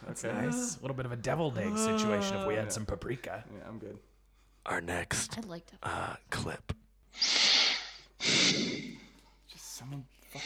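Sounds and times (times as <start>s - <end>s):
speech: 0.2s - 4.1s, 4.7s - 7.5s, 9.8s - 10.4s
nasal breaths blown into a microphone through the nose: 7.2s - 9.2s.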